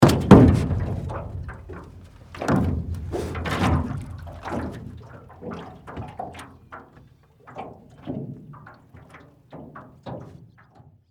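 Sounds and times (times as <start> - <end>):
stepping into an aluminum canoe: 0.0 - 8.4.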